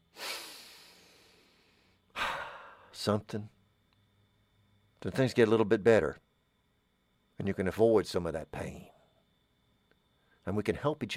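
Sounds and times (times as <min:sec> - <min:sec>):
deep breath: 0:00.1 - 0:03.0
speech: 0:03.0 - 0:03.6, 0:05.0 - 0:06.2, 0:07.4 - 0:08.9, 0:10.4 - 0:11.1.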